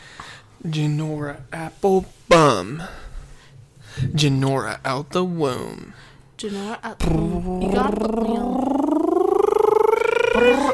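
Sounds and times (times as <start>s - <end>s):
speech: 0.6s - 3.1s, 4.0s - 8.9s, 10.4s - 10.7s
short vocal sound: 7.0s - 10.7s
human voice imitating a long cat meow: 7.1s - 10.7s.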